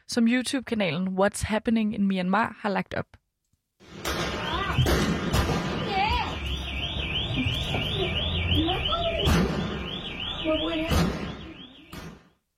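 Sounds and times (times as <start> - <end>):
speech: 0.1 - 3.2, 10.4 - 11.1
gunshots fired at homes by military personnel in cars: 3.8 - 7.8, 9.2 - 12.3
rumbling background of street noise: 3.8 - 12.4
steady warbling alarm-like tone: 5.8 - 12.0.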